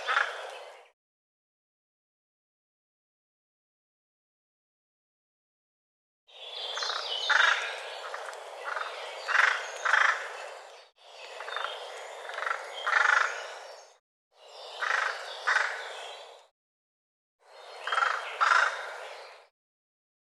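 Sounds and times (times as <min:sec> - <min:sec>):
bird harsh rasping calls: 0:00.0 - 0:00.5, 0:06.8 - 0:10.4, 0:11.4 - 0:13.7, 0:14.6 - 0:16.2, 0:17.8 - 0:19.3.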